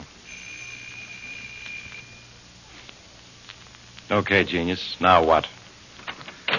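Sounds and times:
low hum: 0:00.0 - 0:06.2
doorbell ringing: 0:00.3 - 0:02.3
speech: 0:04.1 - 0:05.6.

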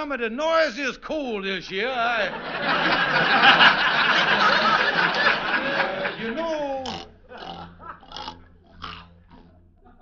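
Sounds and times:
speech: 0:00.0 - 0:06.9
laughter: 0:01.8 - 0:08.3, 0:09.8 - 0:10.0
pig grunting: 0:06.8 - 0:09.6.

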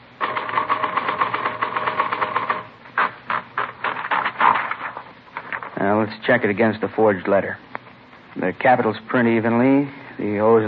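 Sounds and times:
typewriter keystrokes: 0:00.2 - 0:03.1
speech: 0:05.8 - 0:07.7, 0:08.4 - 0:10.6.

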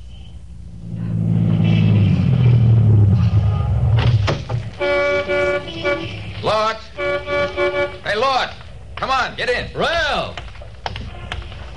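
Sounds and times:
brand new Cadillac sedan engine rumbling as it pulls to a stop: 0:00.0 - 0:11.7
Cadillac sedan horn toots: 0:03.3 - 0:04.0, 0:04.7 - 0:08.4
speech: 0:09.2 - 0:10.4.

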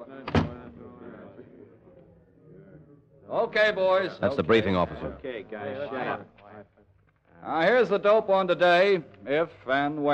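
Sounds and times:
low murmur of voices: 0:00.0 - 0:10.1
hut door swinging shut with a solid thud: 0:00.2 - 0:00.8
speech: 0:03.3 - 0:06.4, 0:07.4 - 0:10.1.

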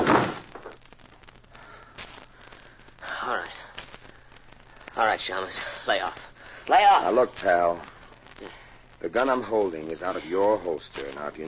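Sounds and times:
loud thud of a door being kicked shut: 0:00.0 - 0:00.6
speech: 0:05.1 - 0:11.4.

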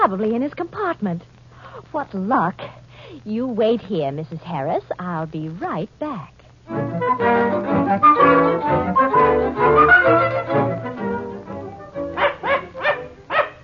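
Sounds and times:
speech: 0:00.1 - 0:10.5
dog barking and yapping: 0:12.2 - 0:13.6.

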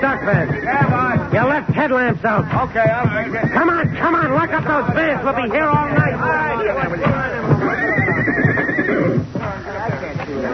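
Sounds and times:
horse hooves while horses are loaded into stock cars: 0:00.0 - 0:10.5
speech: 0:00.0 - 0:10.5
horse whinnying while horses are loaded into stock cars at night: 0:00.1 - 0:01.2, 0:03.2 - 0:04.4, 0:07.4 - 0:09.3.

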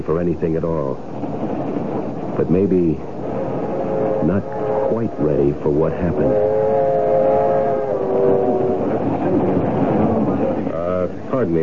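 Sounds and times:
speech: 0:00.0 - 0:01.4, 0:02.4 - 0:03.1, 0:04.2 - 0:06.6, 0:11.3 - 0:11.6
passenger train with a dining car rolling along the rails: 0:00.0 - 0:11.6
faint tonal squeals or a horn note: 0:03.6 - 0:08.9.

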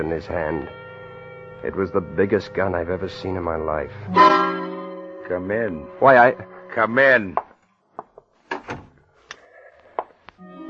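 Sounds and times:
speech: 0:00.0 - 0:00.8, 0:01.6 - 0:04.6, 0:05.3 - 0:07.4
door closing with a thud: 0:08.5 - 0:09.0.

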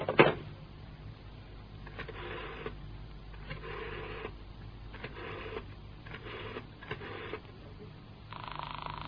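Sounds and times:
steady hum on a telephone line: 0:00.0 - 0:09.0
telephone ringing tone through the line after dialing: 0:08.3 - 0:09.0.

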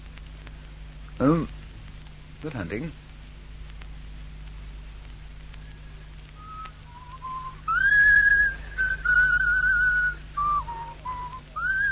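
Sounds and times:
low steady hum: 0:00.0 - 0:11.9
speech: 0:01.2 - 0:01.6, 0:02.4 - 0:03.0
person whistling a simple melody: 0:06.4 - 0:11.9.

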